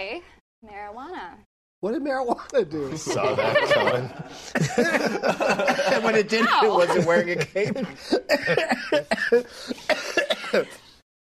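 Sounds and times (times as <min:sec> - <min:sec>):
speech: 0:00.2 - 0:10.8
laughter: 0:02.8 - 0:10.8
person coughing in harsh hacks: 0:08.1 - 0:10.9.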